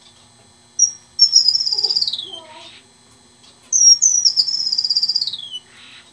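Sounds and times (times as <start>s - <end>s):
female strawberry finch: 0.8s - 2.9s, 3.7s - 6.1s.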